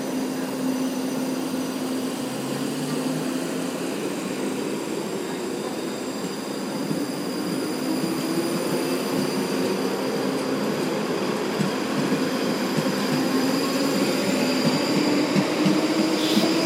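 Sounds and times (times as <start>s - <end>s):
continuous wash of rail noise: 0.0s - 16.6s
electric train motor whine at Charing Cross railway station: 0.0s - 16.6s.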